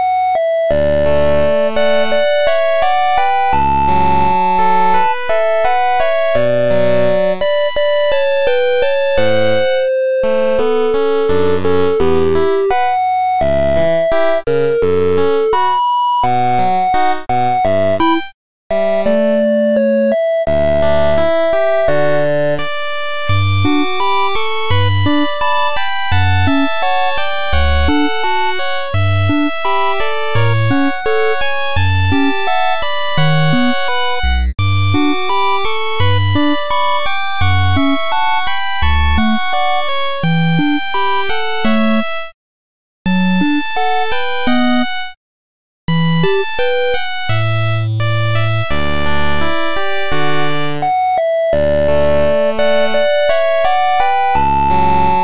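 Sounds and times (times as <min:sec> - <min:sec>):
8-bit chiptune music loop: 0:00.0 - 0:42.3, 0:43.1 - 0:45.2, 0:45.9 - 0:55.2.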